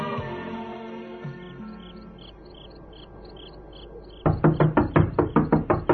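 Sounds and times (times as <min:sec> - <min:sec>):
sharp rapid loud knocks on a door at night: 0:04.2 - 0:05.9.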